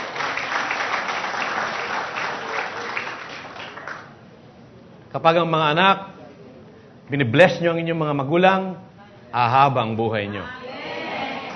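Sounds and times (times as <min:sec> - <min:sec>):
church congregation applauding during a worship service: 0:00.0 - 0:04.3
speech: 0:05.2 - 0:06.1, 0:07.1 - 0:10.6.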